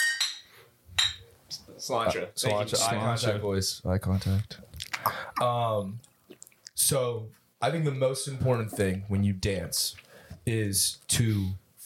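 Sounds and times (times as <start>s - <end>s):
glasses clinking together in a toast: 0.0s - 1.3s
speech: 1.8s - 6.1s, 6.8s - 11.6s.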